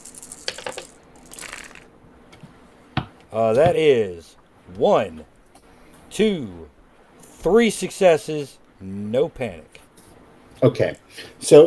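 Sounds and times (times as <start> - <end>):
dice clattering across a hard tabletop: 0.0 - 1.9
speech: 3.3 - 5.4, 6.1 - 6.8, 7.4 - 9.8, 10.6 - 11.6.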